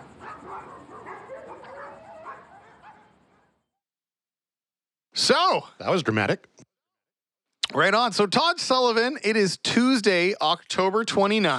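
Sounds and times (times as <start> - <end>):
several dogs chained up in backyards howling and yipping: 0.0 - 3.6
speech: 5.2 - 6.6, 7.7 - 11.5.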